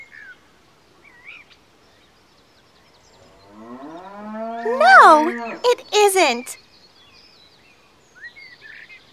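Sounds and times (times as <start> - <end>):
cow mooing: 3.2 - 5.6
speech: 4.6 - 6.6.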